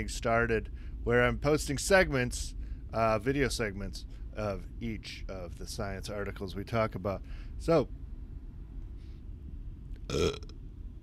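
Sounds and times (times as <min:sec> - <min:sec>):
speech: 0:00.0 - 0:08.0, 0:10.1 - 0:10.5
low steady hum: 0:00.0 - 0:11.0
burp: 0:10.1 - 0:10.6.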